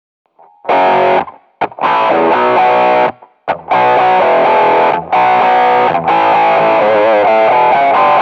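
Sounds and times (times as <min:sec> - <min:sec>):
guitar intro: 0:00.4 - 0:08.2.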